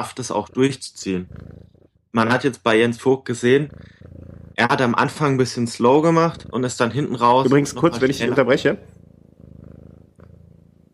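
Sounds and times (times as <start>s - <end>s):
speech: 0.0s - 4.0s, 4.6s - 8.9s
male cat purring: 0.0s - 10.9s.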